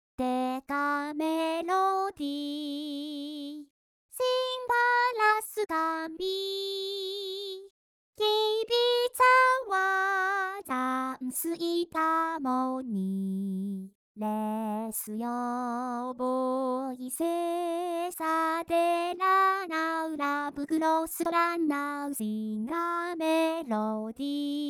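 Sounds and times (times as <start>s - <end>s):
vocaloid synthesized singing voice: 0.2s - 24.6s.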